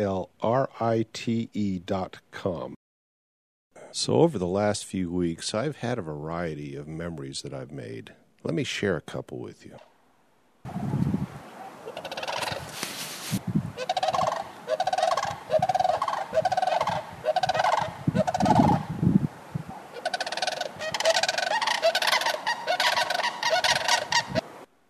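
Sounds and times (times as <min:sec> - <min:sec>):
speech: 0:00.0 - 0:02.8, 0:03.9 - 0:09.9, 0:10.6 - 0:11.2
crane calling in rolling trumpeting bursts: 0:10.7 - 0:18.9, 0:19.6 - 0:24.7.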